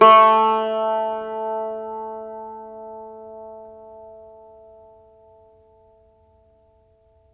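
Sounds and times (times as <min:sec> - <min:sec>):
plucked strings of an Irish bouzouki: 0:00.0 - 0:06.0.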